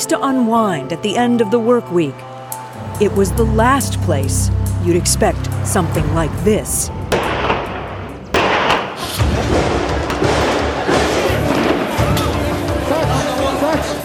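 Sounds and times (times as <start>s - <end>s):
speech: 0.0s - 7.0s
indistinct voices: 2.7s - 9.6s
constant roar of crowd commotion: 2.7s - 14.0s
heavy booming thuds: 2.8s - 11.2s
sudden loud blast: 2.8s - 11.8s
sharp bangs of gunshots: 2.8s - 11.9s.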